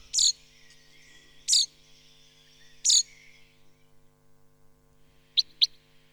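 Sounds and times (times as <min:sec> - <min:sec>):
common chaffinch calling outdoors: 0:00.0 - 0:03.9
faint steady hum: 0:00.0 - 0:06.1.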